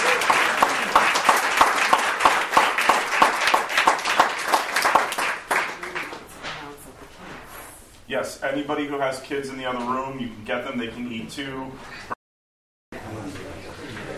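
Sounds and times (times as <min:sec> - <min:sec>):
room full of people applauding: 0:00.0 - 0:06.3
speech: 0:08.1 - 0:12.1.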